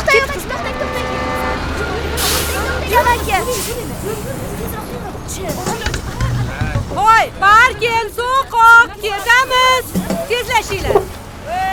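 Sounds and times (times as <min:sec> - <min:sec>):
bus pulling in: 0:00.0 - 0:11.7
people talking: 0:00.0 - 0:11.7
steady engine and road traffic rumble: 0:00.0 - 0:11.7
harmonic horn-like toot: 0:00.6 - 0:02.3.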